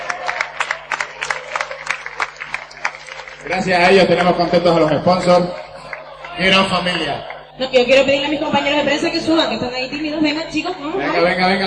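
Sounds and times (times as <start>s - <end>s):
audience at a LAN party gathering in Tenerife applauding for the event photographers: 0.0s - 7.6s
speech: 3.4s - 5.6s, 6.4s - 11.6s.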